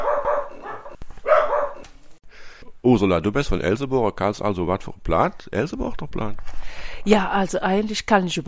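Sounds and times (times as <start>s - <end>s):
dog barking or yelping: 0.0s - 1.9s
speech: 2.8s - 8.4s.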